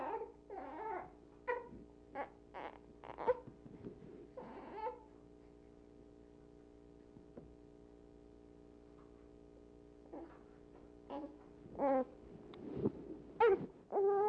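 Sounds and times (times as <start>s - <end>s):
soft high-pitched little whimpers: 0.0s - 3.5s, 4.4s - 5.1s, 11.1s - 12.2s, 13.4s - 14.2s
faint steady hum: 0.0s - 14.2s.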